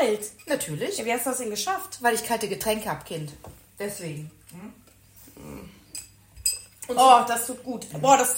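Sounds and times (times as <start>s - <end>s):
speech: 0.0s - 4.8s, 6.9s - 8.3s
glasses clinking in a toast: 6.0s - 6.8s.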